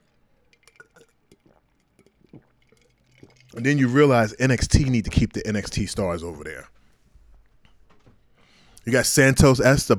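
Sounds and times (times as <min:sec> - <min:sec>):
person sipping water: 0:00.0 - 0:05.4
speech: 0:03.5 - 0:06.7, 0:08.8 - 0:09.9.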